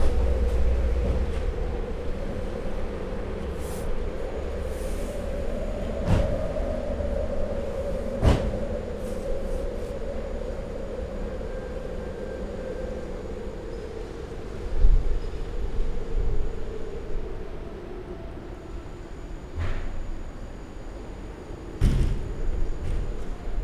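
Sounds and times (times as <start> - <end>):
doors banging: 0.0 - 9.9
whistling wind: 0.0 - 23.6.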